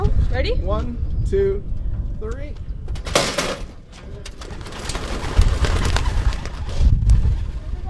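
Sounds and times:
speech: 0.4s - 2.7s
flock of racing pigeons bursting into flight: 3.1s - 7.8s.

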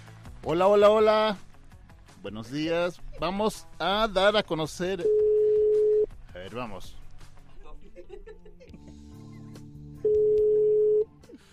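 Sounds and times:
speech: 0.4s - 1.5s, 2.2s - 5.2s, 6.5s - 7.0s
telephone tone as a call reaches voicemail: 5.0s - 6.1s, 10.0s - 11.1s
laughter: 7.4s - 9.7s.

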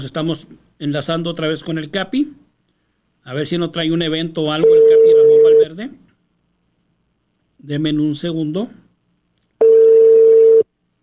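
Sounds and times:
speech: 0.0s - 2.4s, 3.2s - 6.0s, 7.6s - 8.8s
telephone dialing tone as a call is placed: 9.6s - 10.6s.

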